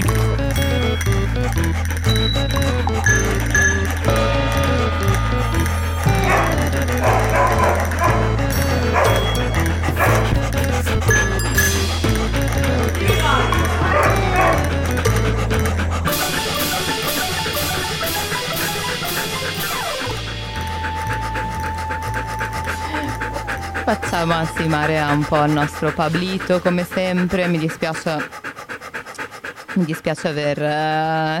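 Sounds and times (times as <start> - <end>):
bouncy theme jingle with pulsing bass line and bright layered melody: 0.1 - 25.2
speech: 24.1 - 28.4, 29.8 - 31.3.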